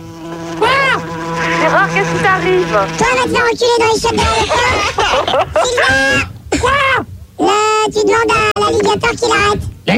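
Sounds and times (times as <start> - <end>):
flies buzzing: 0.0 - 5.2
speech: 2.0 - 9.9
laughter: 4.2 - 6.3.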